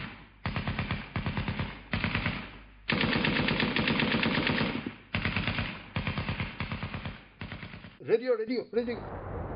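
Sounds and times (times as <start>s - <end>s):
automatic gunfire fired from a rock position: 0.0s - 8.0s
speech: 8.1s - 9.4s.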